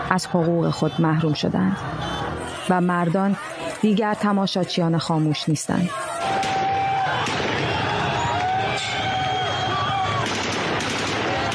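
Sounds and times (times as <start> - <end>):
crowd noise: 0.0 - 11.5
shouting voices: 0.0 - 11.5
speech: 0.1 - 6.1
sharp gunshots in the night: 6.3 - 8.1, 10.1 - 11.5.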